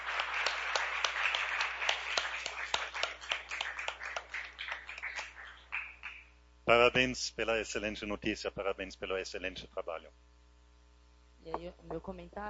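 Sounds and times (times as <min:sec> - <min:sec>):
round of applause from a small group: 0:00.0 - 0:06.3
speech: 0:06.7 - 0:10.3, 0:11.4 - 0:12.4.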